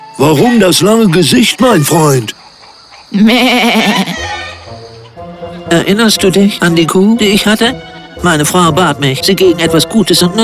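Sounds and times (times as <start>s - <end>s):
speech: 0.2s - 2.4s, 3.1s - 4.3s, 5.7s - 10.4s
sheep bleating: 1.3s - 2.3s, 3.1s - 4.7s.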